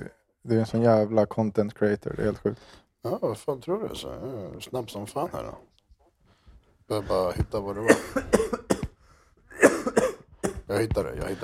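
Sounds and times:
speech: 0.0 - 5.7, 6.9 - 8.8, 10.7 - 11.4
harsh coughing: 7.7 - 11.4.

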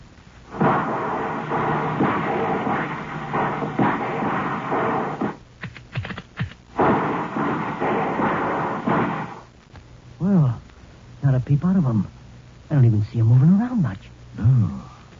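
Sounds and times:
gunfire volleys fired into a forest clearing: 0.5 - 5.4, 6.7 - 9.5
speech: 11.5 - 14.8.

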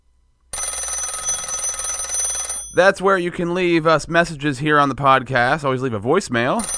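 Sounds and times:
rotary telephone bell ringing: 0.5 - 3.0, 6.6 - 6.7
speech: 2.8 - 6.7.

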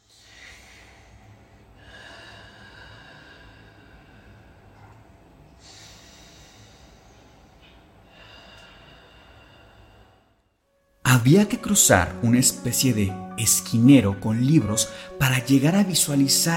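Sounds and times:
slow deep heavy raspy breathing in a dark room: 0.0 - 10.6, 14.9 - 15.2
speech: 11.2 - 16.5.

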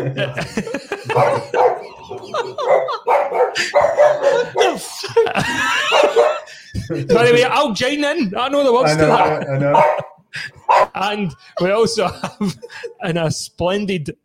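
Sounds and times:
speech: 0.0 - 1.6, 6.9 - 14.2
laughter: 0.0 - 7.6, 8.8 - 13.2
dogs barking and yapping: 1.0 - 4.9, 5.7 - 6.5, 9.0 - 11.0.

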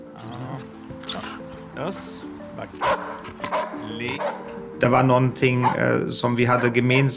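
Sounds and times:
speech: 1.2 - 7.1
dog barking and yipping: 2.8 - 4.6, 5.6 - 5.9.

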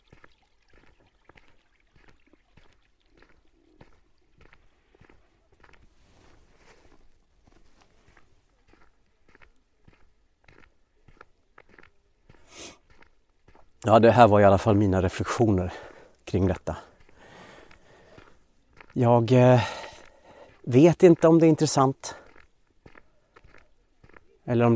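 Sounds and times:
small brook trickling beside a road: 0.0 - 5.8
speech: 13.8 - 16.9, 19.0 - 19.8, 20.7 - 22.1, 24.5 - 24.7.

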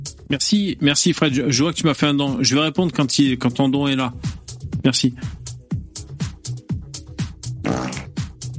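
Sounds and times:
speech: 0.3 - 5.4
loud low raspy farts: 7.6 - 8.3.

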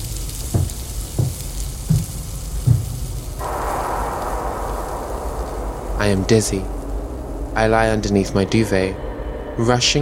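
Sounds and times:
food sizzling while frying in a pan: 0.0 - 7.6
soft thuds: 0.4 - 4.5
speech: 6.0 - 6.8, 7.6 - 9.9.

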